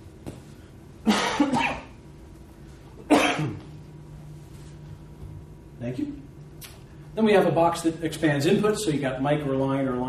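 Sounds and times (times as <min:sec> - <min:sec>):
faint hum: 0:00.0 - 0:10.0
person coughing harshly: 0:01.0 - 0:02.0, 0:03.0 - 0:03.7
speech: 0:05.8 - 0:06.2, 0:07.2 - 0:10.0.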